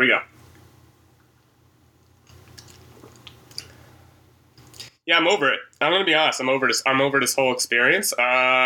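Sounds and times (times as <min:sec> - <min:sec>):
speech: 0:00.0 - 0:00.3, 0:05.1 - 0:08.6
small wet mouth clicks: 0:02.0 - 0:03.8
person slurping a pumpkin spice latte: 0:02.3 - 0:03.8
person swallowing: 0:02.3 - 0:03.8.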